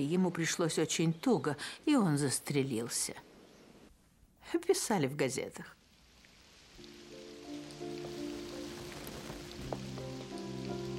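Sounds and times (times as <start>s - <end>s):
speech: 0.0s - 3.3s, 4.5s - 5.8s
steady rain falling: 4.7s - 10.9s.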